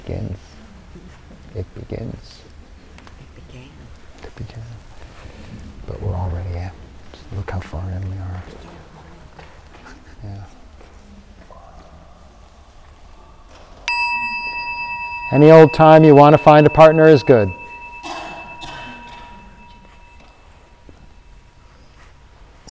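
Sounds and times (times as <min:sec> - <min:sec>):
speech: 0:00.1 - 0:00.6, 0:01.5 - 0:02.5, 0:05.9 - 0:08.9, 0:10.2 - 0:10.6, 0:15.3 - 0:17.6
meditation bell struck in a group session: 0:13.9 - 0:22.1.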